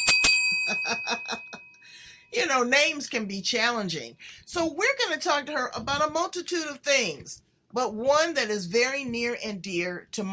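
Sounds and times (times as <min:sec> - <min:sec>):
small hand bell being struck: 0:00.0 - 0:01.9
speech: 0:00.5 - 0:01.4, 0:02.3 - 0:10.3.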